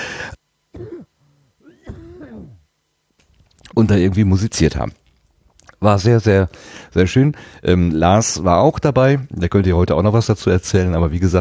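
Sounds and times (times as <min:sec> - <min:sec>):
person coughing: 0:00.8 - 0:02.6
voiced throat-clearing rasp: 0:00.8 - 0:02.7
speech: 0:03.8 - 0:05.0, 0:05.8 - 0:11.3.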